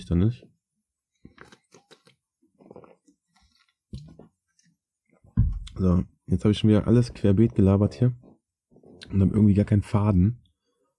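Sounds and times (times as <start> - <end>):
speech: 0.0 - 0.6, 5.8 - 8.2, 9.1 - 10.4
person taking a sip of a drink: 1.2 - 4.7.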